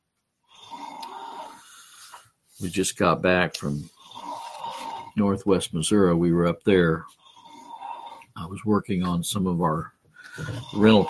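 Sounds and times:
loud rasping snoring: 0:00.5 - 0:01.9, 0:03.8 - 0:05.3, 0:07.1 - 0:08.5, 0:10.3 - 0:11.0
speech: 0:02.6 - 0:04.0, 0:05.2 - 0:07.2, 0:08.5 - 0:11.0.

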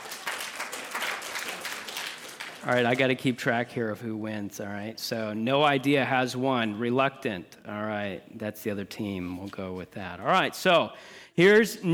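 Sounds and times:
people clapping at a team quiz game: 0:00.0 - 0:03.4
speech: 0:02.6 - 0:11.9.

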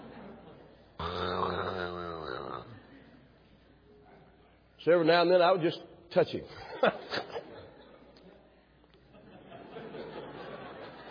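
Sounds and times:
laughter: 0:00.0 - 0:00.8, 0:06.5 - 0:11.0
person imitating the snoring of a man on a plane: 0:01.0 - 0:02.8
speech: 0:04.8 - 0:07.3.

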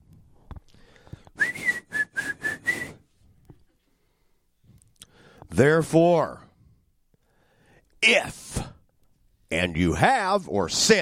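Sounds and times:
person whistling a brief breathy tune: 0:01.4 - 0:03.0
speech: 0:05.6 - 0:06.4, 0:09.5 - 0:11.0.

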